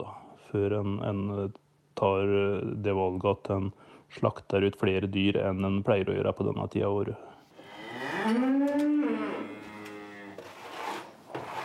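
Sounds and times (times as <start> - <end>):
noise in a barn: 0.0 - 11.6
speech: 0.5 - 7.3, 8.2 - 8.5
cattle mooing in a barn: 7.6 - 10.4.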